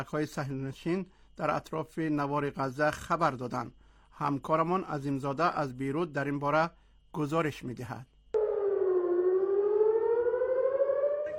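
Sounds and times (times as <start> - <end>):
speech: 0.0 - 8.1
missile attack warning siren wailing: 8.4 - 11.3.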